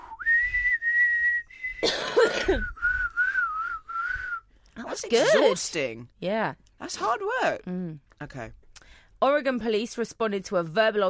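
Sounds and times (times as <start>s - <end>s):
loud shrill whistling of a pop song melody: 0.0s - 1.9s, 2.6s - 4.5s
speech: 1.8s - 2.7s, 5.0s - 8.6s, 9.2s - 11.0s
person coughing or clearing throat: 1.8s - 2.8s.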